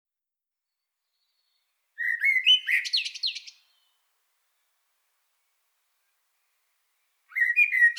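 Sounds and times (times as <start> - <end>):
common blackbird Turdus merula singing: 2.0 - 4.0, 7.3 - 7.9.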